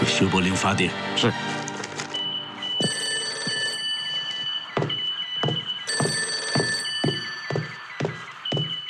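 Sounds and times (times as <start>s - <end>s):
speech: 0.1s - 1.5s
telephone bell ringing in long metallic bursts: 2.1s - 8.8s
sharp knocking thumps: 4.4s - 8.8s.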